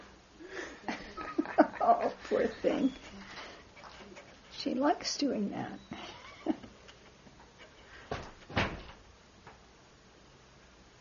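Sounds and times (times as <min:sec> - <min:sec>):
laughter: 0:00.6 - 0:02.6
speech: 0:02.3 - 0:03.2, 0:04.6 - 0:05.9
door slamming shut with heavy thuds: 0:08.1 - 0:09.0.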